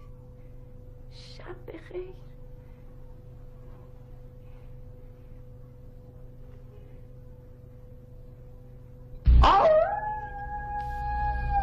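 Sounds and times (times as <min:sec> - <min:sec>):
speech: 0:01.2 - 0:02.3
jackals howling at night: 0:09.4 - 0:11.6.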